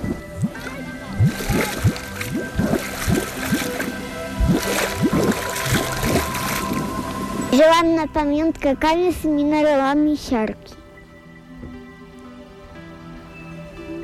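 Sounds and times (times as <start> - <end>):
hot volcanic pool bubbling and gurgling: 0.0 - 8.3
speech: 7.6 - 10.8.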